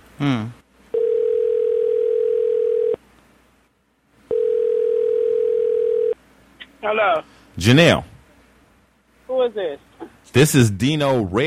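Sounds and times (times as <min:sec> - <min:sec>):
speech: 0:00.2 - 0:00.6, 0:06.9 - 0:08.1, 0:09.6 - 0:11.4
telephone line tones while a phone call is placed: 0:00.9 - 0:03.0, 0:04.3 - 0:06.2.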